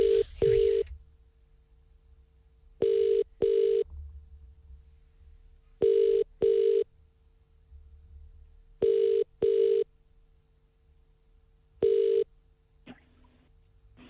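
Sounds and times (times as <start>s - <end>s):
telephone ringing tone in paired double bursts: 2.8s - 3.8s, 5.8s - 6.8s, 8.8s - 9.8s, 11.8s - 12.3s.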